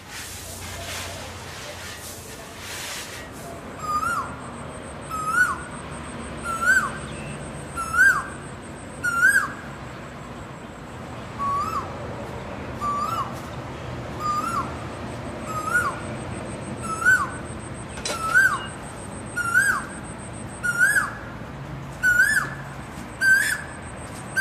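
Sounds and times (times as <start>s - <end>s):
Asian koel calling a rising whistled note to attract a mate: 3.7s - 9.8s, 11.4s - 11.9s, 12.8s - 13.5s, 14.1s - 21.3s, 22.0s - 24.4s.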